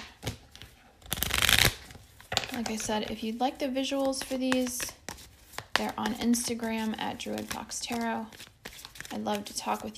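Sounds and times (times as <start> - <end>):
deck of tarot cards shuffled during a tarot card reading: 0.0 - 9.9
speech: 2.6 - 5.0, 5.8 - 8.5, 9.2 - 9.9.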